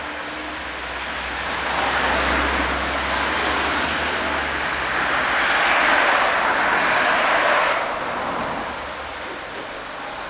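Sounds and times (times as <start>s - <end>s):
traffic: 0.0s - 10.2s.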